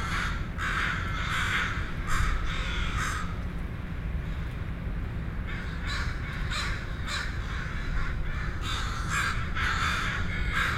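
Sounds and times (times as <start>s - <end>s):
crow cawing: 0.0s - 3.4s, 5.4s - 10.7s
steady low rumbling noise: 0.0s - 10.7s.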